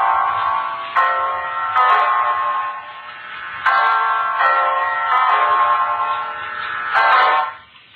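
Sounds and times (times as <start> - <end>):
clock striking nine o'clock with resonant ringing strikes: 0.0 - 7.6.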